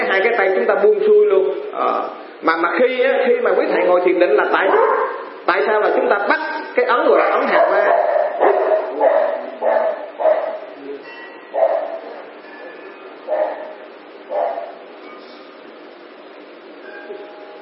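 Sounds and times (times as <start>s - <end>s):
steady hum: 0.0s - 17.5s
speech: 0.2s - 9.2s
several dogs barking: 4.6s - 5.4s, 7.1s - 10.8s, 11.4s - 12.4s, 13.1s - 15.4s.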